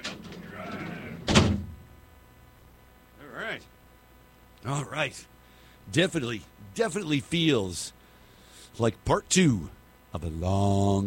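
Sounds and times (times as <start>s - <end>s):
heavy door shutting with a loud thud: 0.0s - 1.8s
murmuring voice: 0.4s - 1.2s
speech: 3.5s - 3.8s, 4.6s - 8.0s, 8.7s - 11.0s.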